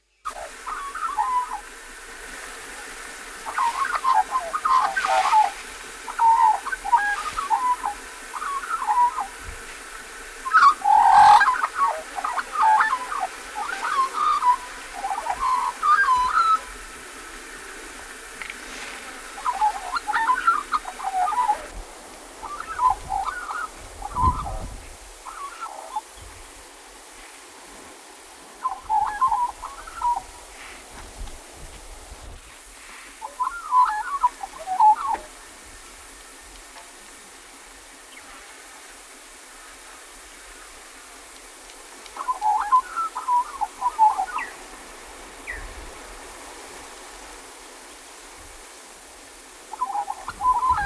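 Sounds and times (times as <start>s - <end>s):
black-backed Australian magpie calling: 0.3s - 1.6s, 3.5s - 9.4s, 10.4s - 16.7s, 19.4s - 21.7s, 22.4s - 24.6s, 28.6s - 30.2s, 33.2s - 35.2s, 42.2s - 44.5s, 49.7s - 50.8s.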